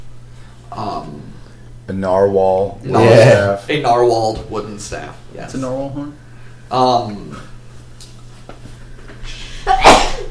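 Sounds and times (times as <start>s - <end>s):
faint steady hum: 0.0s - 10.2s
speech: 1.9s - 7.5s
person sneezing: 9.4s - 10.2s.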